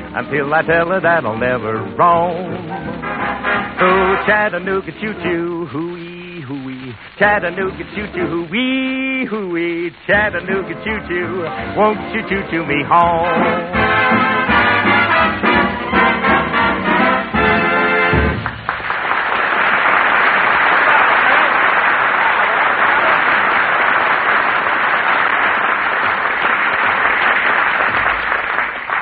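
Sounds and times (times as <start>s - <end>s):
large audience clapping on an old record: 0.0s - 12.8s, 13.9s - 29.0s
song ending: 0.0s - 18.6s
speech: 0.2s - 6.6s, 7.2s - 14.4s.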